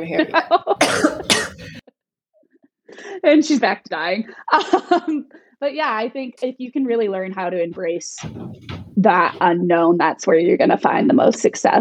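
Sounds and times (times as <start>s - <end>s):
speech: 0.0s - 1.1s, 3.2s - 11.8s
harsh, forceful coughs: 0.8s - 1.8s.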